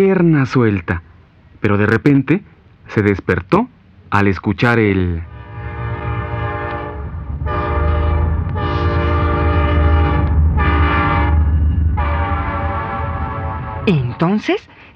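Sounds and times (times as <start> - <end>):
speech: 0.0 - 5.3, 13.8 - 14.8
deep rumble of train wheels and cars: 4.9 - 14.9
train horn blasts: 5.3 - 14.2.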